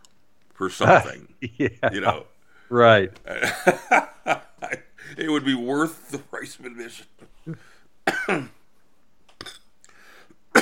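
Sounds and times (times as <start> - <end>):
speech: 0.6 - 8.6
laughter: 0.8 - 2.2, 3.3 - 5.8
person with a lingering cough coughing: 8.1 - 8.6.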